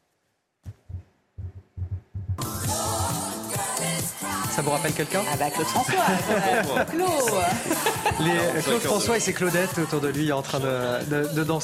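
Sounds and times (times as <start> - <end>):
paired heartbeat-like bass thumps: 0.7 - 3.1
1970s French pop song with full band arrangement: 2.4 - 11.6
speech: 4.6 - 11.6
laughter: 5.7 - 9.3.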